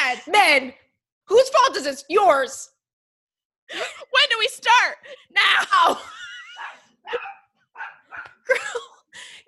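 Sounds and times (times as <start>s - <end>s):
speech: 0.1s - 2.7s, 3.7s - 9.4s
small dog barking: 6.6s - 8.4s.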